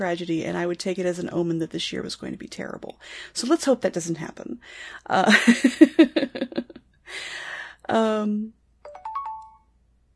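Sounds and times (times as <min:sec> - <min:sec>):
speech: 0:00.0 - 0:08.6
mobile phone chiming with a stepped electronic melody: 0:08.9 - 0:09.8.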